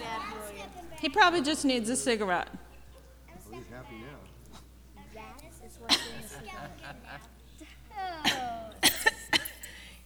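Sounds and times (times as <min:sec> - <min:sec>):
speech: 0:01.0 - 0:02.6, 0:03.5 - 0:04.3
laughter: 0:05.8 - 0:09.4
sick person coughing harshly: 0:05.9 - 0:06.3, 0:08.2 - 0:09.7.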